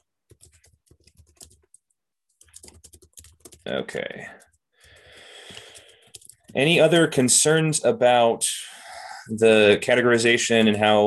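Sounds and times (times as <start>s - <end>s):
typing on a computer keyboard: 0.0s - 6.7s
speech: 3.7s - 4.4s, 6.6s - 8.7s, 9.3s - 11.0s.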